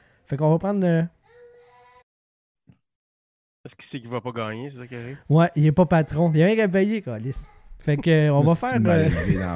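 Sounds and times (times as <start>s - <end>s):
speech: 0.3s - 1.2s, 3.6s - 9.5s
young son crying: 1.3s - 2.0s
laughter: 8.5s - 9.5s.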